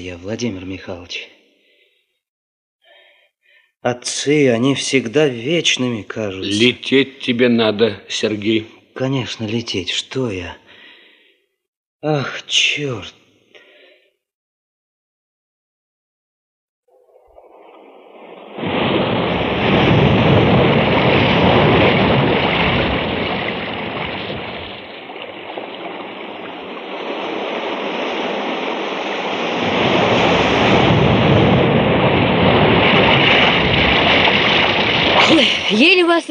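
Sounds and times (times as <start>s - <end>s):
speech: 0.0s - 1.4s, 3.8s - 10.6s, 12.0s - 13.2s, 35.7s - 36.2s
sea surf along a shore: 16.9s - 36.0s
wind along a shore: 16.9s - 36.2s.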